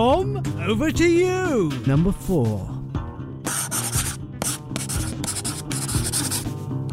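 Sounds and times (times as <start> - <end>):
speech: 0.0 - 2.8
pen scratching across paper signing a non-disclosure agreement: 3.5 - 6.5.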